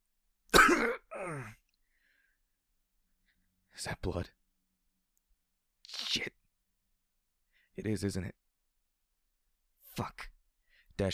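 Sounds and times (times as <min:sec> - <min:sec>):
person coughing harshly: 0:00.5 - 0:01.6
speech: 0:03.8 - 0:04.4, 0:07.8 - 0:08.4, 0:10.0 - 0:10.3.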